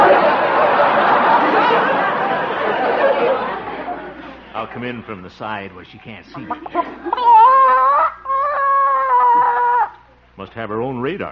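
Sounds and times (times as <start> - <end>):
laughter: 0.0 - 5.2, 5.8 - 10.1
speech: 4.7 - 7.9, 10.4 - 11.3
hen squawking and clucking while her egg is taken: 6.3 - 8.3.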